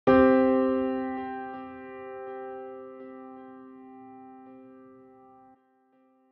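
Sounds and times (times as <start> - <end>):
C minor root and fifth: 0.1 - 6.2.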